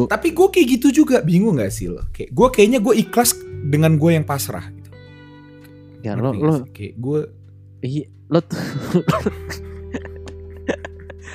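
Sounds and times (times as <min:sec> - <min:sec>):
speech: 0:00.0 - 0:04.8, 0:06.0 - 0:09.7
person coughing: 0:08.5 - 0:09.6
laughter: 0:08.5 - 0:11.3.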